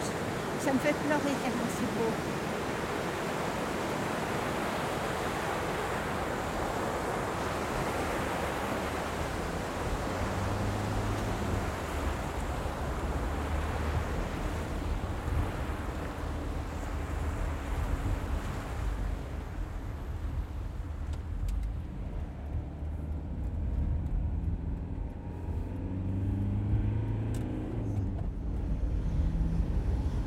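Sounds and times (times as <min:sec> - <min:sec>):
sea waves breaking on the shore: 0:00.0 - 0:22.0
wind rumble: 0:00.0 - 0:30.2
speech: 0:00.6 - 0:02.5.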